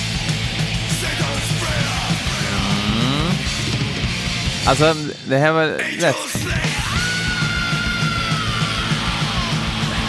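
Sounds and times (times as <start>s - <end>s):
distorted heavy metal guitars: 0.0s - 5.4s, 6.0s - 10.0s
long piercing thrash-metal vocal scream: 1.2s - 4.2s, 6.8s - 10.0s
speech: 4.7s - 6.7s.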